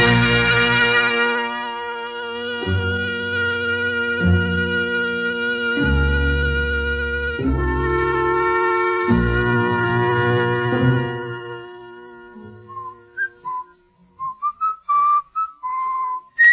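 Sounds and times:
low sustained harmonic chord: 0.0 - 13.8
person whistling a short tune: 12.6 - 16.5.

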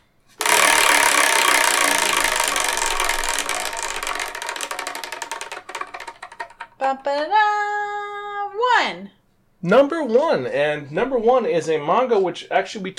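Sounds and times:
game wheel spun hard ticking: 0.4 - 7.5
speech: 6.9 - 7.6, 8.8 - 12.9.

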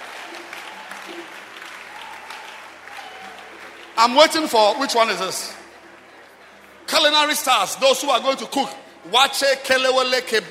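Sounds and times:
audience applauding performers at a live event: 0.0 - 6.8
speech: 4.0 - 5.6, 7.0 - 10.4.

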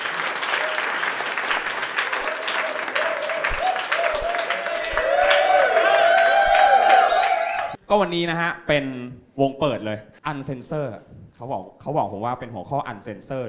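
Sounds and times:
live audience applause at a stand-up comedy show: 0.0 - 7.8
speech: 7.9 - 13.4.

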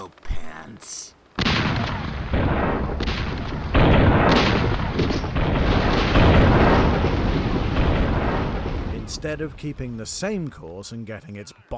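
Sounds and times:
speech: 0.6 - 1.2, 9.2 - 11.7
sailing ship firing a cannon broadside: 1.4 - 10.0.

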